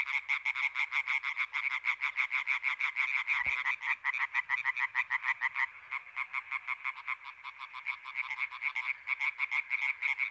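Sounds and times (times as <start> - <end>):
European tree frog chorus croaking at a pond at night: 0.0 - 10.3.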